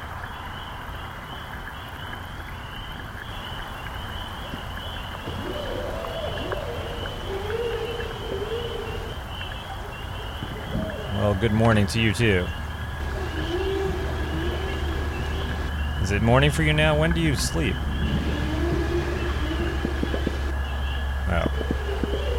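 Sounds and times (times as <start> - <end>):
scattered underwater crackles: 1.4 - 22.3
hissing underwater noise: 3.6 - 22.3
whale moaning: 5.2 - 22.3
speech: 11.4 - 12.6, 16.1 - 18.2.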